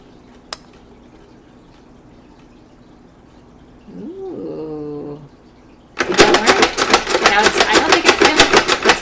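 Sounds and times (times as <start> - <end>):
spin art machine motor whirring: 6.0 - 9.0.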